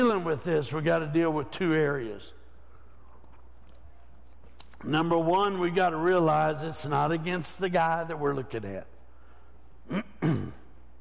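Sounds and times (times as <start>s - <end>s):
speech: 0.2s - 2.4s, 4.8s - 8.9s, 9.9s - 10.6s
man clearing throat: 9.8s - 10.8s.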